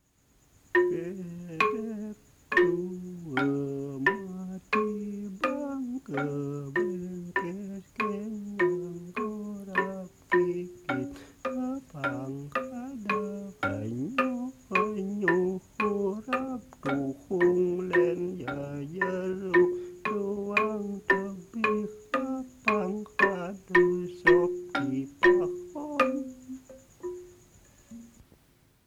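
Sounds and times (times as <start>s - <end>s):
gambang playing: 0.8s - 28.2s.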